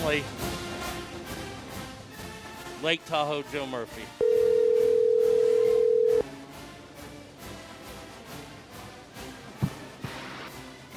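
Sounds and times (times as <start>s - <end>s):
speech: 0.1s - 0.5s, 2.8s - 4.2s
telephone dial tone: 4.2s - 6.2s.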